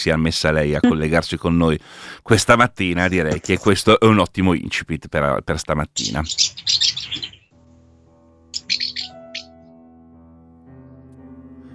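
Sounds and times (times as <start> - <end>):
speech: 0.0 - 7.4
swallows chirping overhead outdoors in the early morning: 6.0 - 7.5, 8.6 - 9.5.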